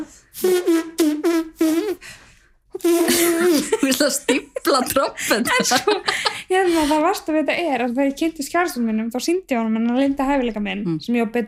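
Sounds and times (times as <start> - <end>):
speech: 0.0 - 1.2, 4.0 - 11.4
voice imitating a trumpet with buzzing lips: 0.0 - 2.1, 2.7 - 4.0
laughter: 3.1 - 7.1.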